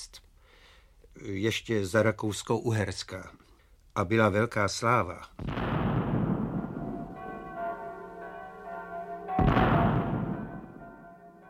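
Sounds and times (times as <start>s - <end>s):
speech: 1.2s - 3.4s, 4.0s - 5.8s
bells of all the churches pealing in Austria-Hungary: 6.1s - 11.4s.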